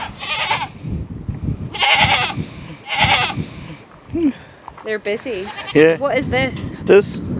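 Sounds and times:
goats bleating on a farm: 0.0s - 0.8s, 1.7s - 3.8s, 5.4s - 6.0s
low farmyard noise: 0.0s - 0.8s, 1.7s - 4.0s, 4.7s - 6.0s
speech: 4.9s - 7.3s.

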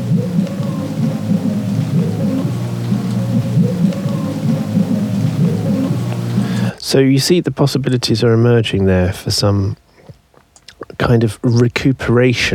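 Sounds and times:
steady dense rain: 0.0s - 6.7s
deep rumbling low drone: 0.0s - 6.8s
speech: 6.9s - 9.8s, 11.0s - 12.5s.

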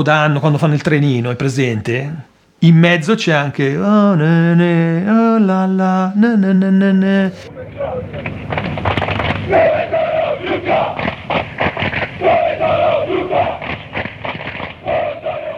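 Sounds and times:
speech: 0.0s - 11.5s
large stadium crowd of football supporters chanting in unison ultras style: 9.2s - 15.5s.

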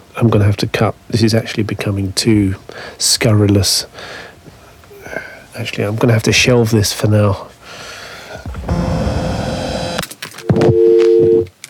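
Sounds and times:
speech: 0.2s - 4.3s, 5.1s - 7.8s
steady electronic noise: 8.4s - 10.8s
short beeps: 10.5s - 11.5s
sustained dual-pitched home phone keypad tone: 10.5s - 11.5s.

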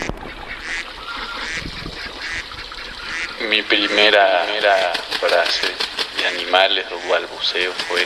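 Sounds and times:
duck quacking: 0.0s - 8.0s
speech: 3.5s - 8.0s.

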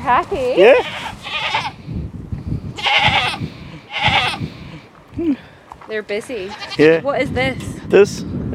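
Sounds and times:
speech: 0.0s - 1.0s, 5.2s - 8.4s
low rumble of farmyard noise: 0.0s - 1.8s, 2.7s - 5.1s, 6.2s - 7.0s
goats bleating on a farm: 0.6s - 1.8s, 2.8s - 4.9s, 6.3s - 7.0s.

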